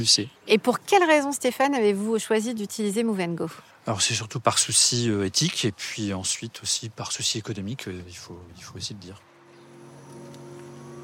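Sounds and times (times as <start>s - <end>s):
speech: 0.0s - 9.3s
soft tyre and road noise: 7.8s - 11.0s
electric car pulling away with motor whine: 9.3s - 11.0s.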